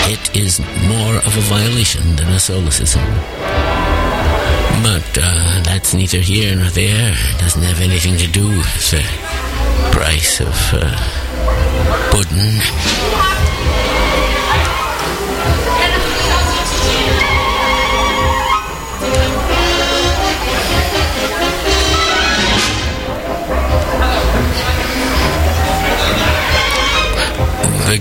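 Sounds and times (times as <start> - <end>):
large crowd roaring and cheering outside the doors of a radio station: 0.0 - 27.9
speech: 0.1 - 13.8
crowd laughing loudly: 10.4 - 27.7
scattered higher yells: 12.8 - 27.6.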